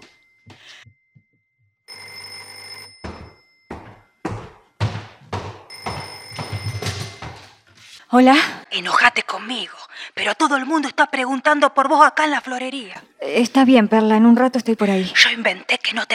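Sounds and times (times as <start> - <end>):
telephone bell ringing: 1.9 - 4.2, 5.7 - 7.6
speech: 8.1 - 16.1.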